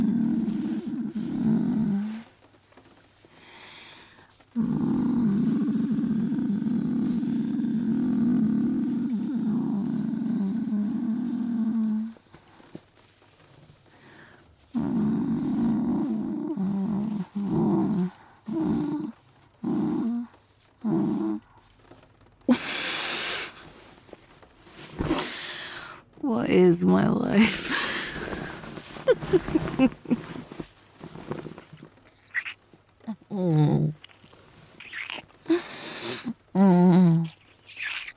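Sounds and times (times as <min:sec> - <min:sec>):
person imitating a cat purring with a low throaty rumble: 0:00.0 - 0:02.4, 0:03.5 - 0:12.3, 0:14.7 - 0:21.7, 0:27.0 - 0:38.1
person making a breathy hiss: 0:00.0 - 0:26.2, 0:27.4 - 0:32.6, 0:33.8 - 0:38.1
speech: 0:26.5 - 0:27.7.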